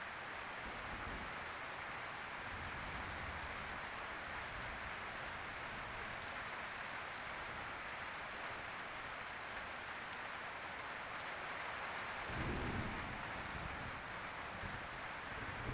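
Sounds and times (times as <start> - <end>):
steady rain falling outdoors in a forest heard through an open window: 0.0 - 15.7
low rumble of wind: 12.4 - 15.7.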